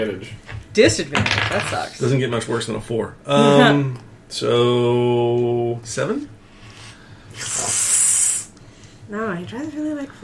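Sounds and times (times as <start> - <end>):
speech: 0.0 - 6.4, 7.4 - 7.7, 9.1 - 10.2
person imitating a cat hissing: 7.3 - 8.6.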